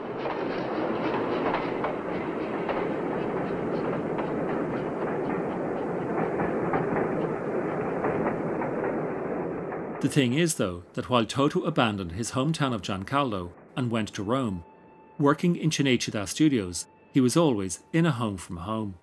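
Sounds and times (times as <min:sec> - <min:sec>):
train wheels clattering on rails: 0:00.0 - 0:14.2
constant loud train rumble: 0:00.0 - 0:19.0
speech: 0:10.0 - 0:19.0.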